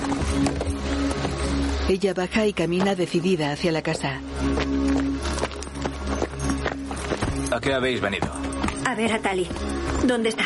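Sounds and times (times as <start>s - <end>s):
horse-drawn cart horse hooves clopping: 0.0s - 10.4s
speech: 1.9s - 5.1s, 7.6s - 10.4s.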